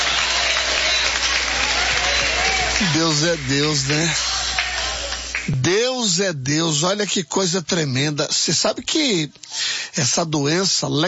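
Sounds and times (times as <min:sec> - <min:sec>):
church congregation clapping: 0:00.0 - 0:06.2
speech: 0:02.8 - 0:04.4, 0:05.5 - 0:11.0.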